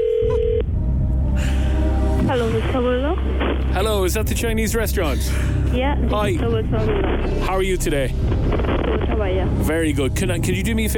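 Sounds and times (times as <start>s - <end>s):
short steady electronic telephone tone: 0.0s - 0.7s
low rumbling hum: 0.0s - 10.9s
speech: 2.4s - 10.9s.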